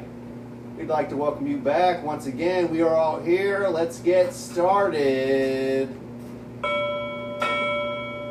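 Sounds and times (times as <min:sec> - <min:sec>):
speech: 0:00.8 - 0:06.0
bell being struck: 0:06.6 - 0:08.2.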